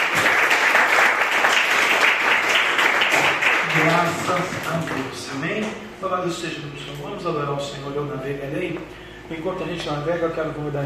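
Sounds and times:
church audience applauding: 0.0 - 5.1
speech: 4.0 - 10.8.

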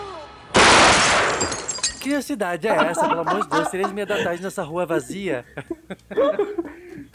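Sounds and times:
gunshot in a film scene: 0.5 - 1.5
speech: 2.2 - 7.1
laughter: 2.7 - 7.1.

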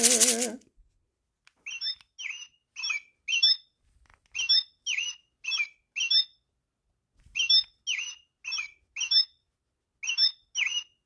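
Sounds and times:
bird chirping: 1.6 - 6.5, 7.3 - 11.0.

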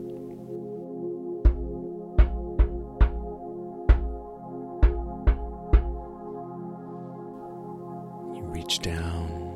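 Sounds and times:
sustained musical drone: 0.0 - 9.5
firm knocking on a door: 1.4 - 6.1
speech: 8.7 - 9.3.

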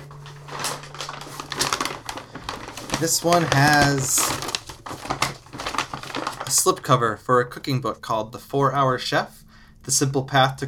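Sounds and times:
paper bag crinkling while being handled: 0.0 - 7.0
speech: 3.0 - 4.6, 6.6 - 10.6.

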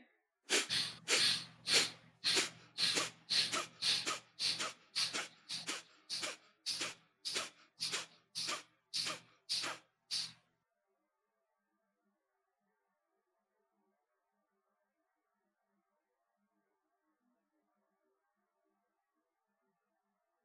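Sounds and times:
forceful rhythmic breathing during a guided breathing exercise: 0.5 - 10.4.

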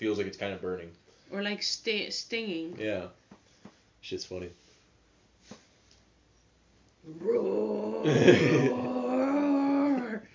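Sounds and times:
speech: 0.0 - 3.2, 4.0 - 4.6, 7.0 - 8.9
person imitating a growling roar with the voice: 7.1 - 10.3.

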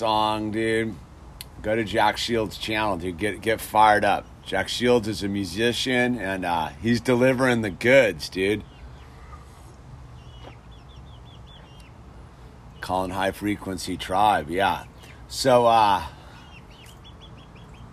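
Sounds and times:
speech: 0.0 - 8.7, 12.9 - 16.2
chickens clucking in hot weather: 1.6 - 17.9
scattered chirp: 6.5 - 17.9.

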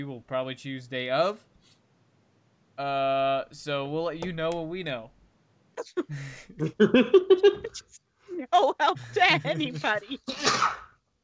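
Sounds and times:
speech: 0.0 - 1.8, 2.8 - 5.2, 5.8 - 10.9
laughter: 6.1 - 7.8, 8.9 - 10.3
sneeze: 10.3 - 11.0.

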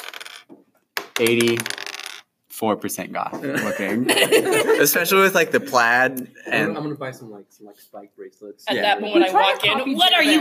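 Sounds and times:
percentile dice rolling: 0.0 - 2.3
speech: 1.2 - 1.8, 2.6 - 10.4
laughter: 3.4 - 5.9.

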